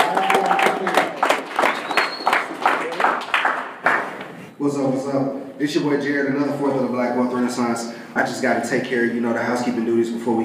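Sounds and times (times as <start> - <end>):
crowd applauding with dense clapping: 0.0 - 4.4
whistles from crowd: 1.6 - 2.6
speech: 4.6 - 10.4.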